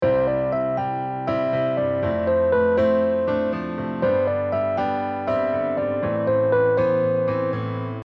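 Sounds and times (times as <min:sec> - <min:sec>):
melody: 0:00.0 - 0:07.6.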